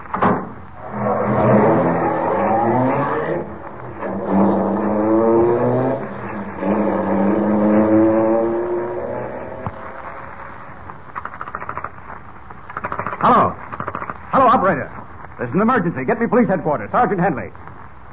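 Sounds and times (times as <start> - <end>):
car engine revving and pulling away through gear changes: 0.8 - 10.5
faint clicks: 10.8 - 14.3
speech: 15.5 - 17.6.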